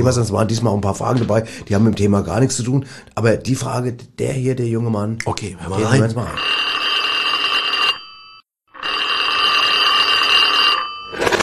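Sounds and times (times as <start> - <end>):
speech: 0.0 - 6.7
loud telephone bell ringing before an answering machine message: 6.4 - 11.4.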